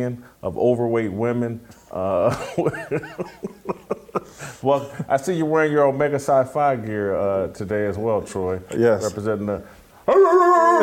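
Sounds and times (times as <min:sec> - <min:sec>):
speech: 0:00.0 - 0:09.8
laughter: 0:02.2 - 0:05.1
person imitating a dog bark: 0:10.1 - 0:10.8.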